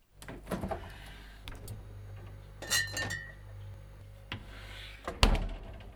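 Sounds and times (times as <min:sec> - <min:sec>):
low fridge hum: 0:00.1 - 0:05.9
glass bottles clinking together: 0:02.6 - 0:03.4.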